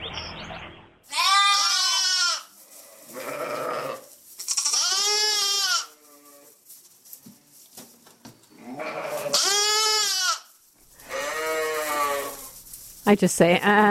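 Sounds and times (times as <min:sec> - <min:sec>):
baby lambs bleating on a sheep farm: 0:01.1 - 0:06.6, 0:08.5 - 0:12.6
speech: 0:13.1 - 0:13.8.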